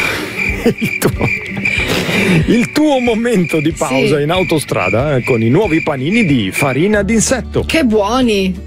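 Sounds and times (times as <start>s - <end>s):
crickets chirping: 0.0s - 7.3s
laughter: 0.4s - 5.8s
speech: 0.7s - 8.6s.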